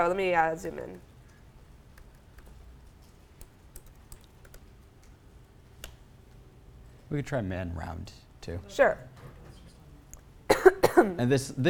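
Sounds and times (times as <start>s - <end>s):
speech: 0.0s - 1.1s, 7.1s - 9.1s, 10.5s - 11.6s
faint steady hum: 0.0s - 11.6s
typing on a computer keyboard: 1.9s - 5.2s.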